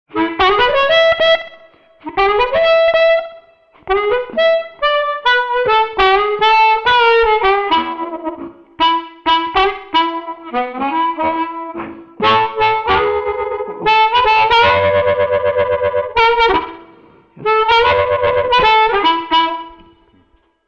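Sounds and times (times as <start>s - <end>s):
blues harp: 0.1s - 20.3s.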